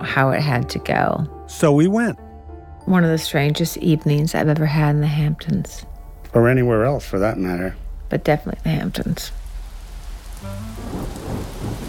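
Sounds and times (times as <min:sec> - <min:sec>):
speech: 0:00.1 - 0:02.2, 0:02.9 - 0:09.4, 0:10.4 - 0:11.2
thunder rumbling: 0:03.7 - 0:11.8
heavy rain pouring: 0:06.3 - 0:11.8.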